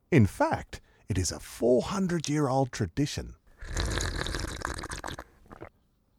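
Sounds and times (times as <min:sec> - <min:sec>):
speech: 0:00.1 - 0:03.8
slurping soup from a spoon: 0:03.6 - 0:05.8
soft sip of soup: 0:03.6 - 0:05.8.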